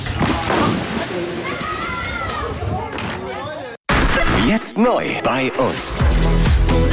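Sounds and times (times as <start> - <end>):
lake water sloshing and splashing at a swimming beach: 0.0 - 2.9
children calling and playing at a lake swimming beach: 1.0 - 3.8
speech: 4.7 - 6.8.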